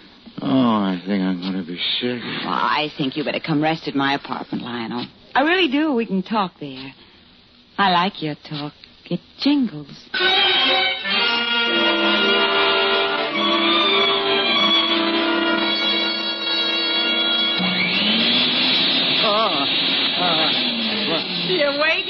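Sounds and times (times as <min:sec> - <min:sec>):
speech: 0:00.5 - 0:07.1, 0:07.8 - 0:11.9
vacuum cleaner cleaning butts off the floor: 0:10.1 - 0:22.0.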